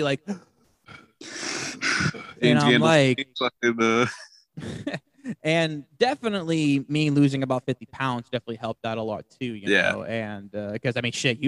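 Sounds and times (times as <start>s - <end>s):
speech: 0.0s - 1.3s, 2.0s - 11.4s
person imitating heavy breathing in a car: 0.9s - 2.4s
laughter: 3.8s - 5.4s.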